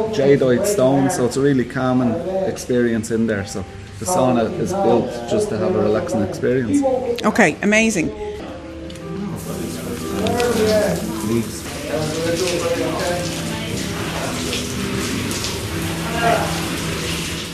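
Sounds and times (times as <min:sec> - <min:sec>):
speech: 0:00.0 - 0:08.3, 0:10.9 - 0:13.0
cold shower water running: 0:09.3 - 0:17.5.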